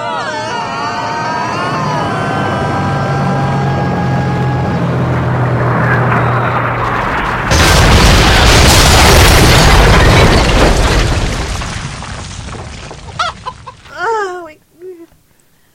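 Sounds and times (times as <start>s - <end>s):
plane crash-landing: 0.5s - 11.5s.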